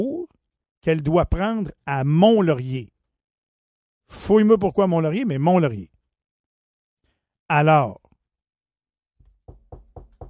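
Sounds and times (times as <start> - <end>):
speech: 0.8 - 2.9, 4.1 - 5.9, 7.5 - 8.0
firm knocking on a door: 9.2 - 10.2.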